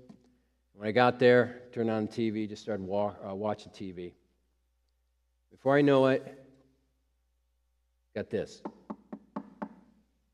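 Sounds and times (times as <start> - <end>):
speech: 0.8 - 4.2, 5.5 - 6.4, 8.2 - 8.8
knocking on a hotel room door: 8.6 - 9.9.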